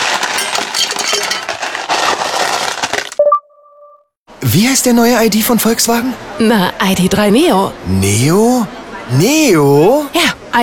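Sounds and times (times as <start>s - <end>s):
ice cubes tumbling into a glass: 0.0s - 3.2s
bright clink of a glass: 0.3s - 1.7s
speech: 4.5s - 10.6s.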